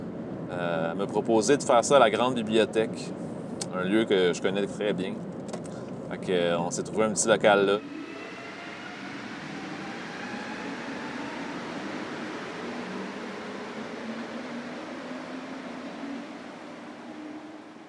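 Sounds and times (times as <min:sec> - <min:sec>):
faint subway train motor whine: 0:00.0 - 0:17.8
speech: 0:00.5 - 0:05.3, 0:06.2 - 0:08.0
moving subway train wheels roaring on track: 0:07.1 - 0:17.8.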